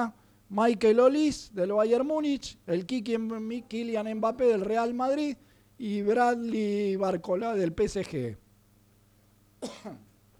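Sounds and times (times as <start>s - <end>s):
speech: 0.0s - 8.4s, 9.6s - 10.1s
harsh cough from a person with a cough of several days: 9.6s - 10.2s.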